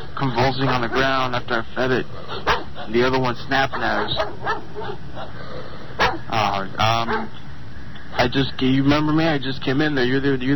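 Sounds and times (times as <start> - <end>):
steady low hiss: 0.0 - 10.5
speech: 0.2 - 7.4, 8.1 - 10.5
dog barking: 0.4 - 1.3, 2.3 - 5.4, 6.0 - 7.4.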